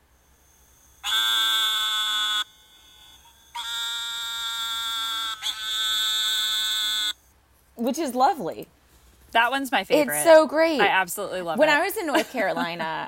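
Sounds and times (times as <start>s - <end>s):
eastern narrowmouth toad Gastrophryne carolinensis buzzing calls: 0.5s - 7.2s
speech: 7.8s - 13.0s
laughter: 12.0s - 13.0s.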